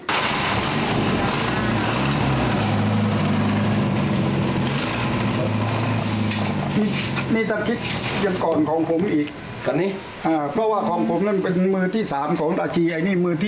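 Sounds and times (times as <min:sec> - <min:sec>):
car engines started up for show, idling together: 0:00.1 - 0:10.2
speech: 0:06.8 - 0:13.4.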